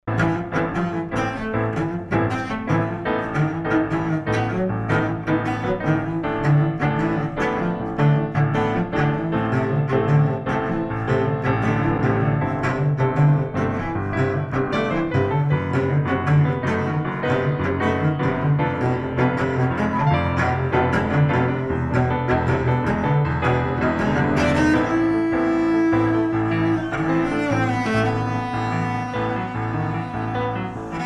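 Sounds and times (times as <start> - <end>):
cello in a backing track: 0.0 - 31.0
piano in a backing track: 0.0 - 31.0.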